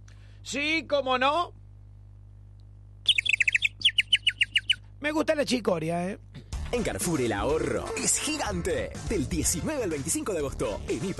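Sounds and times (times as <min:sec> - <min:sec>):
faint low hum: 0:00.0 - 0:06.6
speech: 0:00.4 - 0:01.6, 0:05.0 - 0:11.1
small bird chirping: 0:03.0 - 0:04.9.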